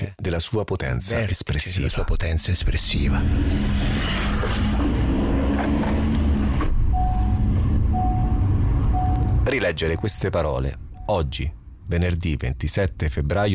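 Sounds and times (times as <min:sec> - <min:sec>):
speech: 0:00.0 - 0:05.1, 0:09.5 - 0:13.5
car driving through city traffic with engine rumble and road noise: 0:02.8 - 0:13.5
short electronic beeps: 0:06.8 - 0:11.2.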